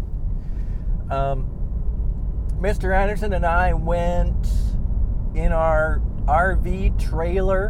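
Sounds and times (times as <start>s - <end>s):
car riding rough on flat-spotted tires on pavement: 0.0s - 7.6s
speech: 1.1s - 1.6s, 2.6s - 4.7s, 5.3s - 7.6s.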